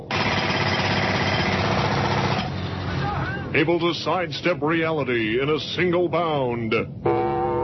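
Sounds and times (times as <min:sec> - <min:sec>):
pneumatic drill hammering: 0:00.0 - 0:02.6
speech: 0:03.6 - 0:07.3.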